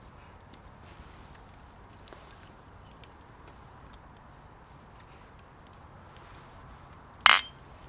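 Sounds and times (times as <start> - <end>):
faint ticks and rustles: 0.0 - 7.1
glasses tapped together in a toast: 7.3 - 7.6.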